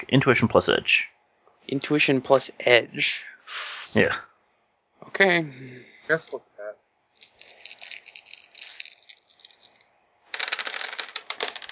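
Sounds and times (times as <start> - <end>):
speech: 0.0 - 4.3, 5.0 - 6.5
dice rattling in a cup: 7.2 - 11.7.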